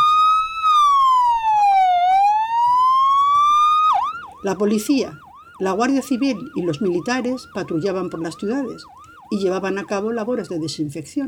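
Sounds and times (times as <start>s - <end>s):
ambulance siren wailing: 0.0s - 10.9s
faint road noise: 0.0s - 11.2s
speech: 4.4s - 11.2s.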